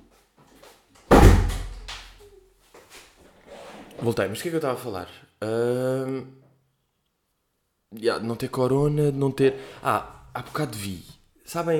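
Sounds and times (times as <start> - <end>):
door swinging shut with a solid thud: 1.1 - 2.0
speech: 4.0 - 6.4, 7.9 - 11.7.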